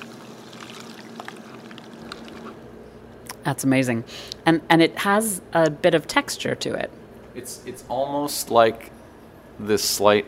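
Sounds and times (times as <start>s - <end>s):
cocktail poured through a fine tea strainer: 0.0s - 2.6s
speech: 3.4s - 9.0s, 9.6s - 10.2s.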